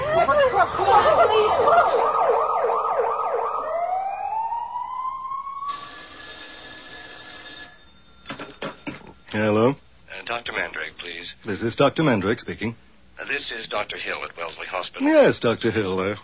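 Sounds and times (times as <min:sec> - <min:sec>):
ambulance siren wailing for a car accident victim: 0:00.0 - 0:06.4
speech: 0:09.4 - 0:16.2.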